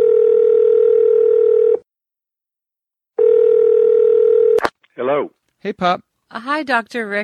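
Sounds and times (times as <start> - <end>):
telephone dial tone as a phone call is being placed: 0.0 - 1.8, 3.2 - 4.6
speech: 5.6 - 7.2.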